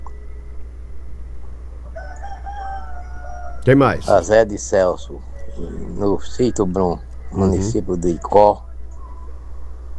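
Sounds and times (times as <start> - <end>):
steady low hum: 0.0 - 9.9
rooster crowing: 2.0 - 3.6
speech: 3.6 - 8.7.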